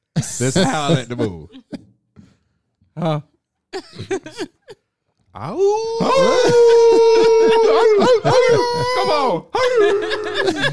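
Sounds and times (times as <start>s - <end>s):
laughter: 0.2s - 1.7s, 5.9s - 10.7s
speech: 0.2s - 1.7s, 3.0s - 4.6s, 5.4s - 10.7s
person imitating a wolf howl: 5.5s - 9.3s
other voices yelping and howling: 5.6s - 10.4s.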